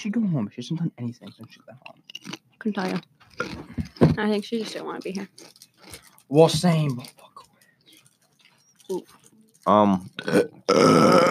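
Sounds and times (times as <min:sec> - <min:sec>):
speech: 0:00.0 - 0:07.3, 0:08.9 - 0:11.2
loud deep croaky burp: 0:10.2 - 0:11.2
grunt-like sound: 0:10.3 - 0:11.2.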